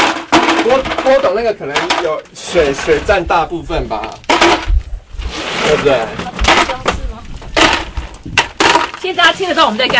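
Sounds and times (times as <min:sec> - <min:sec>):
ice cubes clattering and scraping across a hard floor: 0:00.0 - 0:02.2, 0:04.0 - 0:04.8, 0:05.6 - 0:09.9
speech: 0:00.8 - 0:04.8, 0:05.7 - 0:06.9, 0:09.0 - 0:09.9.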